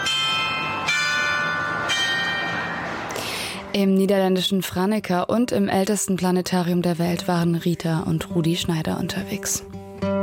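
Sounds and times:
mechanical carillon of the town hall in Franeker Netherlands playing a march: 0:00.0 - 0:03.4
speech: 0:03.7 - 0:10.1.

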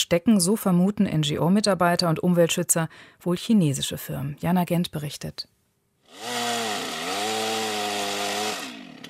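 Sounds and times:
speech: 0:00.1 - 0:06.6
chainsaws cutting trees during illegal logging in a forest in northern Namibia: 0:06.0 - 0:09.0.

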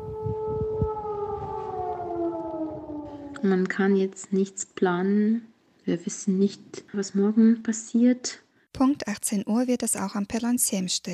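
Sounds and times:
air raid sirens wailing: 0:00.0 - 0:03.9
low rumbling noise: 0:00.0 - 0:04.1
speech: 0:03.4 - 0:11.1.

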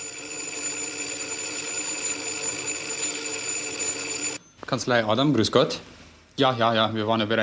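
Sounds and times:
several intercom telephones ringing at once: 0:00.0 - 0:04.4
speech: 0:04.7 - 0:07.4.

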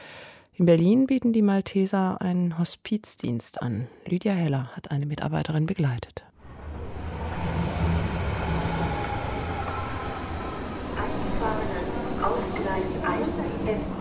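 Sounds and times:
speech: 0:00.6 - 0:06.3
commuter S-Bahn train rumbling through Pankow station in Berlin: 0:06.4 - 0:13.9.

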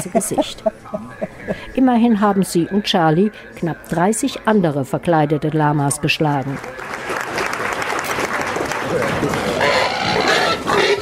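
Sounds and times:
speech: 0:00.0 - 0:00.9, 0:01.5 - 0:07.1
laughter: 0:00.0 - 0:01.8, 0:08.8 - 0:09.6
crowd clapping and chatter: 0:05.9 - 0:09.8
pig squealing loudly at a squealing contest: 0:09.4 - 0:11.0.

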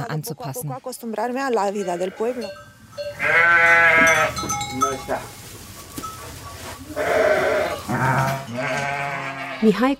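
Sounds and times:
speech: 0:00.2 - 0:05.4, 0:08.0 - 0:09.0, 0:09.6 - 0:09.9
quiet shuffling: 0:00.6 - 0:09.0
sheep and lambs bleating in a barn: 0:01.6 - 0:05.2, 0:06.8 - 0:09.8.

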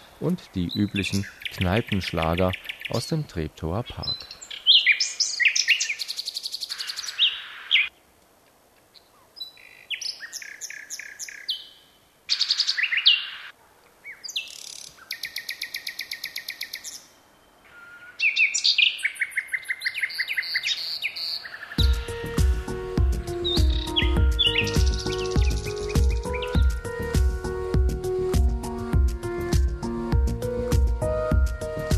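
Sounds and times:
nightingale singing: 0:00.0 - 0:08.0, 0:08.8 - 0:31.9
speech: 0:00.2 - 0:04.4
loud instrumental music with a steady beat: 0:21.8 - 0:31.9.

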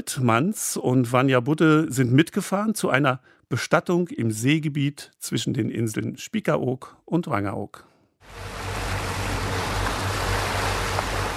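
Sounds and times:
speech: 0:00.0 - 0:08.7
motor ship engines droning: 0:08.3 - 0:11.3
water and spray as a ship pushes through rough choppy sea: 0:08.3 - 0:11.3.

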